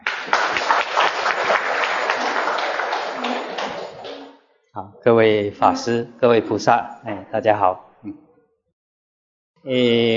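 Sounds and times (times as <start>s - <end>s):
audience applause at a Buddhist gathering: 0.0s - 4.4s
speech: 4.8s - 8.2s, 9.6s - 10.1s.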